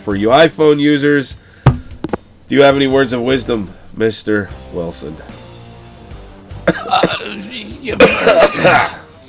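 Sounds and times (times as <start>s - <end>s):
speech: 0.0s - 1.5s, 2.5s - 5.4s, 6.8s - 9.0s
throat clearing: 6.7s - 7.3s, 8.0s - 9.1s
person coughing harshly: 6.7s - 7.4s, 8.0s - 9.0s.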